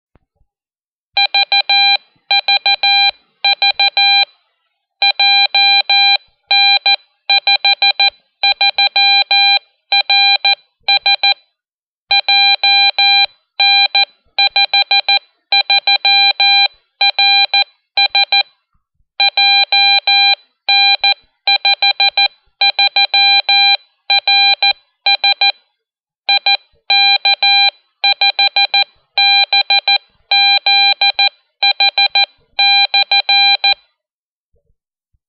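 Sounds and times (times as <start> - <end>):
CW beacon identifier in Morse code: 1.2 - 4.3, 5.0 - 11.4, 12.1 - 18.4, 19.2 - 25.6, 26.3 - 33.8.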